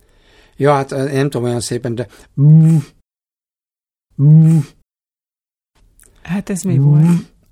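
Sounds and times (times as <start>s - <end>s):
speech: 0.6s - 3.0s, 4.2s - 4.8s, 6.2s - 7.3s
person imitating Eurasian bittern booming call: 4.2s - 4.8s, 6.7s - 7.3s.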